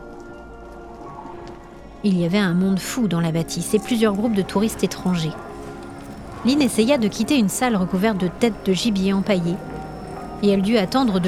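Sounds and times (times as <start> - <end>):
speech: 2.0 - 5.4, 6.4 - 9.7, 10.4 - 11.2
steady rain beating against window glass: 3.2 - 11.2.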